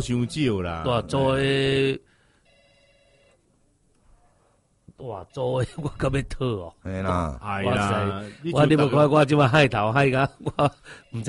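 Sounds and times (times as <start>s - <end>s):
speech: 0.0s - 2.1s, 5.0s - 11.2s
noisy room background: 0.0s - 11.2s
telephone ringing with a trilling electronic tone: 2.4s - 3.4s, 10.9s - 11.2s.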